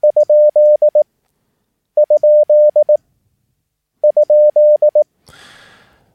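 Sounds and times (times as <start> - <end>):
steady clear Morse code tone sending the question mark: 0.0 - 1.0, 2.0 - 3.0, 4.0 - 5.0.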